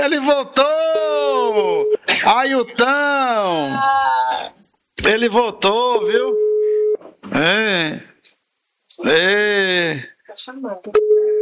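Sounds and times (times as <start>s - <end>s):
speech: 0.0s - 6.4s, 7.2s - 8.1s, 9.0s - 11.4s
new mobile phone ringing unanswered with warbling melodic bursts: 6.3s - 7.0s, 11.0s - 11.4s.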